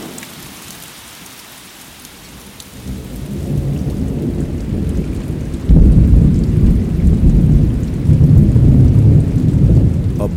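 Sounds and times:
heavy steady rain pouring down: 0:00.0 - 0:10.3
deep rolling thunder rumbling: 0:02.8 - 0:10.3.

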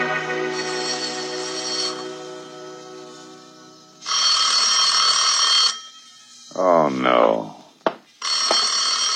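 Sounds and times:
old-fashioned telephone bell ringing: 0:00.1 - 0:03.3, 0:03.9 - 0:06.4, 0:08.2 - 0:09.1
person muttering: 0:06.5 - 0:07.7.

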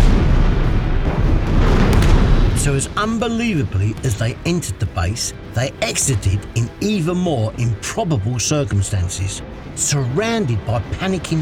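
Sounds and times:
heavy explosions rippling through a German military base during a ground attack: 0:00.0 - 0:06.6
speech: 0:02.8 - 0:11.4.

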